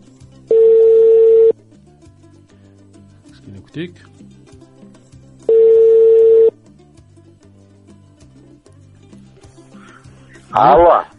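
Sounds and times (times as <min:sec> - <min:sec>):
telephone tone while a call is placed: 0:00.5 - 0:01.5, 0:05.5 - 0:06.5
speech: 0:03.7 - 0:04.4, 0:10.6 - 0:11.1.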